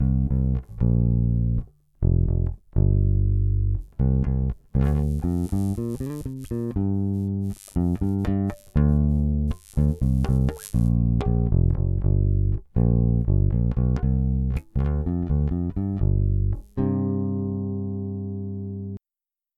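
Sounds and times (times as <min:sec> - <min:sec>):
bass guitar test: 0:00.0 - 0:19.0
pickup interference noise when approaching the pickup: 0:04.6 - 0:11.4.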